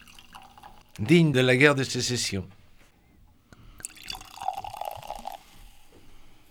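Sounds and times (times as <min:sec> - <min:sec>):
light fizzing of sparkling cider: 0:00.0 - 0:01.1, 0:03.8 - 0:05.9
sparkling cider pouring into a glass: 0:00.0 - 0:02.3, 0:03.7 - 0:05.8
speech: 0:01.0 - 0:02.6.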